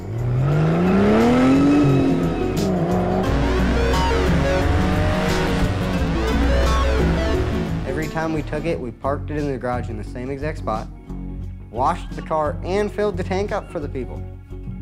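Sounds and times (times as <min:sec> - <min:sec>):
car tires squealing and skidding: 0:00.0 - 0:07.8
2007 Mercedes-Benz car engine revving while accelerating: 0:00.0 - 0:08.8
speech: 0:08.4 - 0:11.0, 0:11.8 - 0:14.2.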